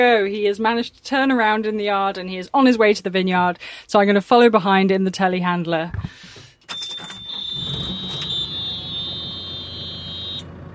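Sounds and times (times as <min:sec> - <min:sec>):
speech: 0:00.0 - 0:06.4
shrill high-pitched vehicle warning beep: 0:06.7 - 0:10.5
low rumbling engine: 0:07.6 - 0:10.7.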